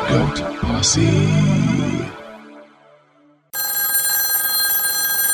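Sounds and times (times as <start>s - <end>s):
speech: 0.1s - 2.0s
telephone bell ringing: 3.6s - 5.3s.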